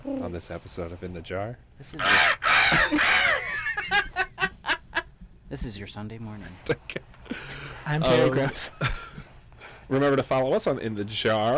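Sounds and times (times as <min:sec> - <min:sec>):
speech: 0:00.1 - 0:04.3, 0:05.5 - 0:09.1, 0:09.9 - 0:11.5
bird sound effect harsh chattering squawk: 0:02.0 - 0:03.5
laughter: 0:02.5 - 0:05.1.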